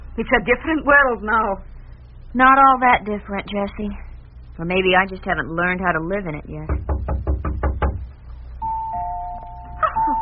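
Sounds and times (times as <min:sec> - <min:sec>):
speech: 0:00.2 - 0:04.0, 0:04.6 - 0:06.9
quick solid knocks on a door: 0:06.7 - 0:08.1
doorbell ringing with a two-tone chime: 0:08.6 - 0:10.2.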